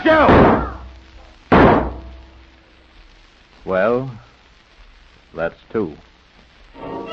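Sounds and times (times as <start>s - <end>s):
speech: 0.0s - 0.4s, 3.6s - 4.3s, 5.3s - 6.1s
locked door being crashed open: 0.1s - 0.9s, 1.5s - 2.2s.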